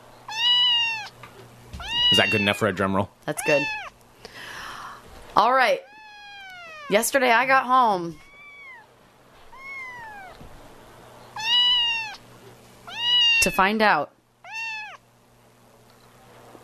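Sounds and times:
cat meowing: 0:00.3 - 0:01.2, 0:01.8 - 0:02.8, 0:03.4 - 0:04.0, 0:05.8 - 0:07.0, 0:08.1 - 0:08.9, 0:09.5 - 0:10.4, 0:11.4 - 0:12.2, 0:12.8 - 0:13.6, 0:14.4 - 0:15.0
speech: 0:02.1 - 0:03.9, 0:05.4 - 0:05.9, 0:06.9 - 0:08.2, 0:13.4 - 0:14.2.

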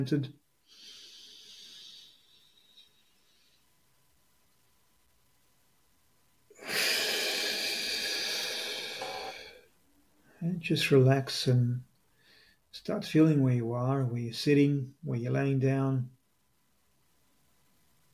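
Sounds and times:
speech: 0:00.0 - 0:00.4, 0:10.4 - 0:11.9, 0:12.7 - 0:16.2
deep breath drawn in through the nose: 0:00.6 - 0:03.6, 0:06.5 - 0:09.7
quiet breath: 0:00.6 - 0:04.1, 0:06.5 - 0:10.6, 0:12.0 - 0:12.7.

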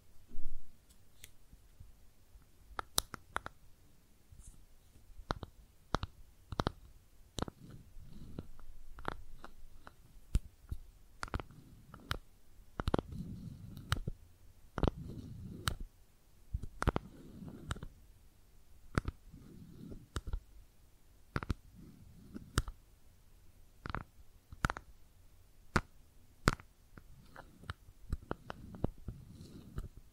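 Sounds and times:
makeup tapping and scratching: 0:05.2 - 0:15.8, 0:16.6 - 0:17.9, 0:18.9 - 0:20.5, 0:21.3 - 0:22.8, 0:23.8 - 0:24.9, 0:25.7 - 0:30.1.

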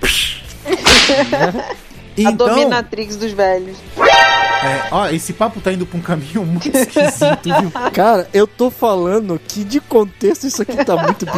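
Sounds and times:
whip crack: 0:00.0 - 0:01.5
laughter: 0:00.6 - 0:02.6, 0:06.5 - 0:08.3, 0:10.2 - 0:11.3
speech: 0:01.1 - 0:11.3.

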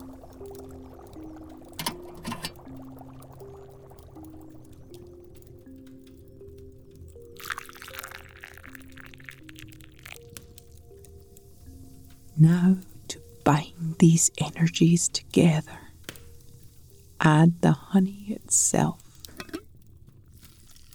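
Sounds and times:
golden potion pouring into a cup: 0:00.0 - 0:13.4
soft sustained humming tones: 0:00.0 - 0:19.7
speech: 0:12.4 - 0:12.9, 0:13.5 - 0:15.8, 0:17.2 - 0:19.0.

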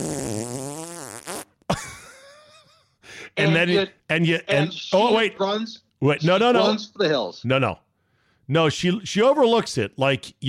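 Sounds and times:
loud drawn-out fart: 0:00.0 - 0:01.7
speech: 0:03.4 - 0:07.8, 0:08.5 - 0:10.4.

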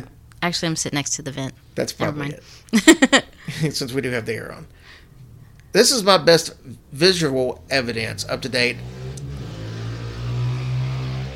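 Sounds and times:
speech: 0:00.5 - 0:05.0, 0:05.7 - 0:09.0
truck engine revving outside: 0:07.7 - 0:11.3.

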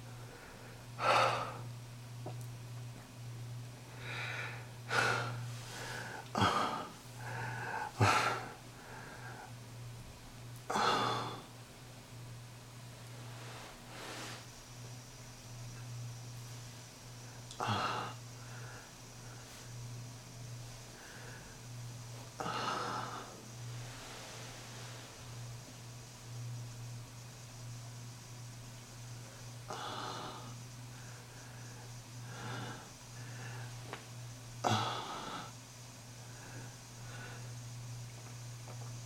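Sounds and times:
steady low electrical hum: 0:00.0 - 0:39.0
deep heavy breathing: 0:00.1 - 0:01.7, 0:03.9 - 0:09.6, 0:10.7 - 0:11.5, 0:17.2 - 0:19.8, 0:20.8 - 0:25.6, 0:29.3 - 0:34.0, 0:34.6 - 0:35.6, 0:36.2 - 0:37.6.

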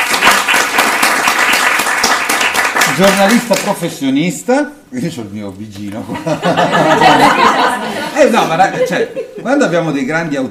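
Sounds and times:
audience applause: 0:00.0 - 0:03.7
speech: 0:03.0 - 0:10.4
laughter: 0:06.0 - 0:09.9.

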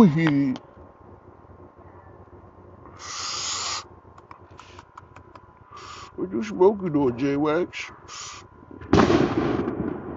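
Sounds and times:
speech: 0:00.0 - 0:00.7, 0:06.2 - 0:09.2
low noise: 0:00.0 - 0:10.1
firework going off outside with boom and crackling rumble: 0:08.7 - 0:10.1.

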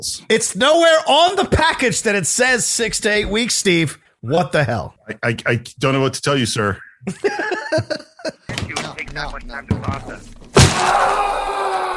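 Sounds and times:
speech: 0:00.0 - 0:08.6, 0:09.2 - 0:11.3
laughter: 0:07.0 - 0:08.6
agitated person groaning and shouting: 0:10.7 - 0:11.9.

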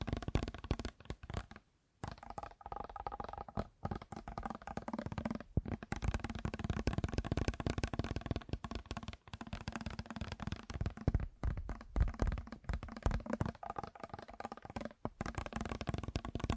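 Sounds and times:
fast tapping with sharp little clicks: 0:00.0 - 0:16.5.

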